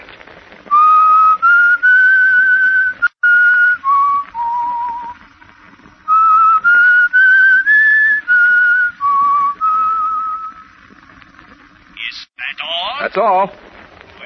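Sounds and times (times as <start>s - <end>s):
whistled tune over a telephone line: 0.7s - 5.2s, 6.1s - 10.7s
speech: 13.2s - 13.6s.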